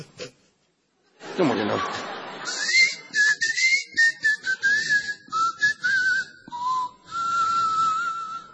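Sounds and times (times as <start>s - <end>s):
laughter: 0.0s - 3.2s
speech: 1.4s - 2.6s
person whistling a wandering melody into the microphone: 2.5s - 8.5s.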